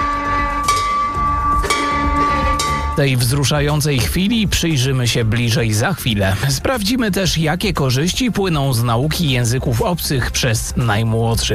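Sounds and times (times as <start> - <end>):
hope bell struck at a cancer centre in Bydgoszcz: 0.0 - 4.0
speech: 3.0 - 11.5.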